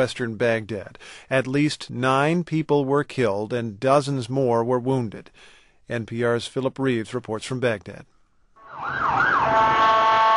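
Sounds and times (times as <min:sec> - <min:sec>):
speech: 0:00.0 - 0:08.1, 0:08.8 - 0:09.4
ambulance siren wailing through city streets after a car bombing: 0:08.6 - 0:10.3.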